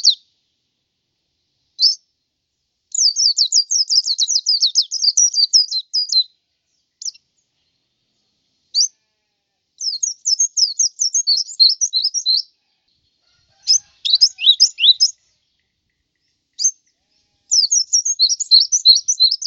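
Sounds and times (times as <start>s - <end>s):
white-eye twittering song: 0.0s - 0.2s, 3.0s - 6.3s, 7.0s - 7.2s, 9.8s - 12.5s, 13.6s - 16.9s, 17.5s - 19.4s.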